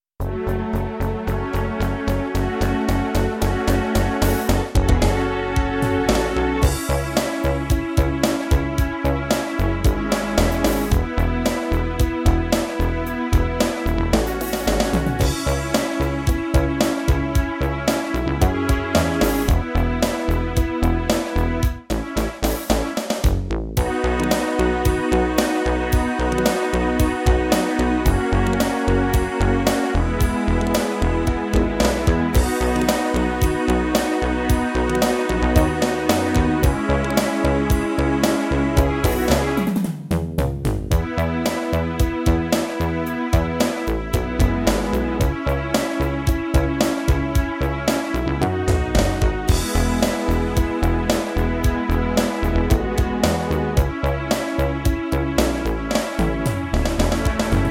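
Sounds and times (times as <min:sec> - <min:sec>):
rock pop backbeat with bass: 0:00.2 - 0:57.6.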